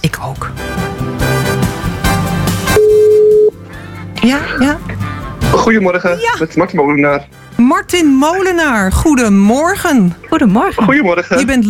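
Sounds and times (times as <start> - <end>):
music: 0.0 - 11.6
speech: 0.2 - 0.8, 4.2 - 4.9, 5.6 - 11.6
telephone ringing tone while waiting for pickup: 2.7 - 3.6.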